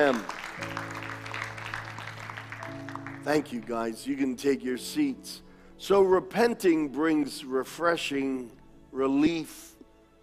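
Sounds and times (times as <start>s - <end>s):
speech: 0.0s - 1.0s, 3.2s - 9.7s
audience clapping: 0.0s - 3.8s.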